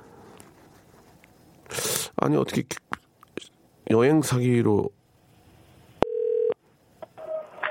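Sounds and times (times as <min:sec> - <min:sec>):
speech: 0:02.2 - 0:02.9, 0:03.9 - 0:05.0
telephone dialing tone: 0:06.0 - 0:06.6.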